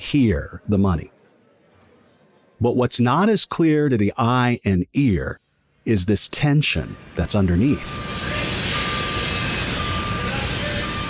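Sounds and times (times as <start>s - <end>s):
speech: 0.0s - 1.2s, 2.6s - 8.4s
truck reversing beeps at a construction site: 7.2s - 11.0s.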